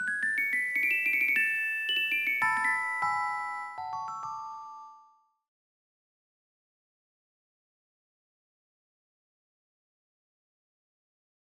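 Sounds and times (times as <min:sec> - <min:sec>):
opening jingle: 0:00.2 - 0:05.2.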